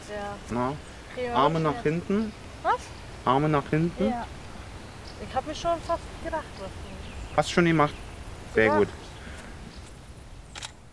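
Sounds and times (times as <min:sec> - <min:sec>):
low steady rumble: 0:00.0 - 0:10.9
speech: 0:00.1 - 0:04.4, 0:05.2 - 0:09.0
camera shutter clicking: 0:10.5 - 0:10.8.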